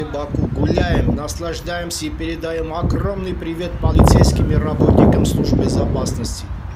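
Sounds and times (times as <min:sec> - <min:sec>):
wind: 0:00.0 - 0:06.7.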